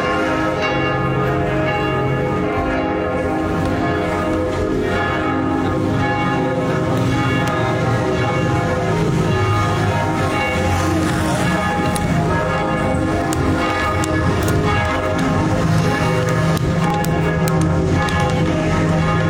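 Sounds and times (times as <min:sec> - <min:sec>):
church bells ringing in Brussels in the evening: 0:00.0 - 0:19.2.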